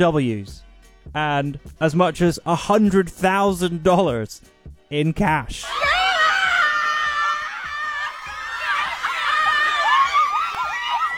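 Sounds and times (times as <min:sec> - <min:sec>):
speech: 0:00.0 - 0:05.9
crowd of women screaming excitedly at an event: 0:05.6 - 0:11.1.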